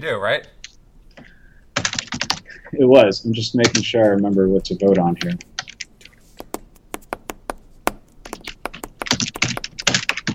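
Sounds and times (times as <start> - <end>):
speech: 0.0 - 0.6, 2.7 - 5.5
loud fast typing on a computer keyboard: 1.8 - 2.5, 5.2 - 10.3.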